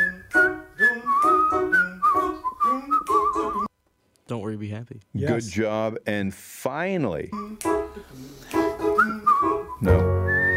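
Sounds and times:
person whistling a bright bouncy pop melody: 0:00.0 - 0:03.7, 0:08.5 - 0:10.5
speech: 0:04.3 - 0:10.2.

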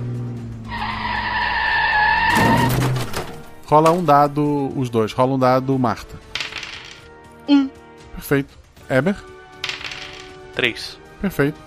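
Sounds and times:
car tires screeching as it skids: 0:00.0 - 0:04.2
car crashing into another car: 0:01.7 - 0:04.0
speech: 0:03.7 - 0:06.3, 0:08.3 - 0:09.3, 0:10.6 - 0:11.6.

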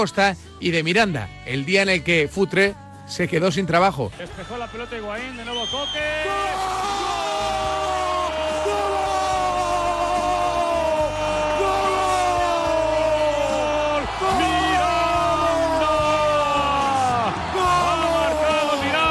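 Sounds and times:
speech: 0:00.0 - 0:07.2
man's loud celebratory yell: 0:06.0 - 0:19.0.

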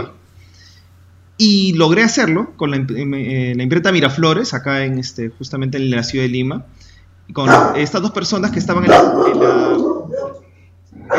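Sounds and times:
speech: 0:01.4 - 0:09.9
dog barking: 0:07.4 - 0:07.9, 0:08.8 - 0:11.1.

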